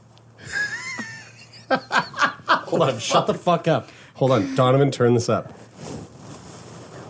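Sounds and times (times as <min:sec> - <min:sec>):
laughter: 0:00.4 - 0:03.6, 0:04.2 - 0:04.8
speech: 0:01.7 - 0:02.0, 0:02.7 - 0:05.7
breathing against a microphone: 0:03.8 - 0:04.2.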